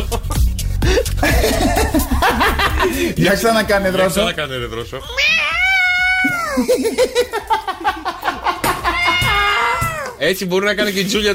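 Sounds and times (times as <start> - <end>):
laughter: 0.0 - 3.6, 6.2 - 10.1
speech: 3.2 - 5.4, 6.6 - 8.1, 10.2 - 11.3
cat yowling: 5.0 - 6.6, 8.8 - 10.2.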